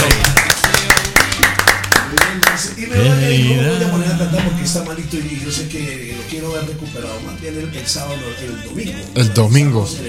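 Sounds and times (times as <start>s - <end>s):
rhythmic hand clapping: 0.0s - 2.8s
low voice murmuring: 2.9s - 4.7s
speech: 2.9s - 10.0s.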